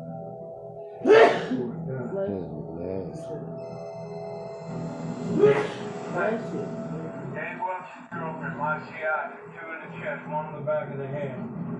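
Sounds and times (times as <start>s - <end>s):
person sneezing: 1.0s - 1.7s, 5.4s - 5.8s
speech: 1.5s - 6.8s, 7.9s - 11.7s.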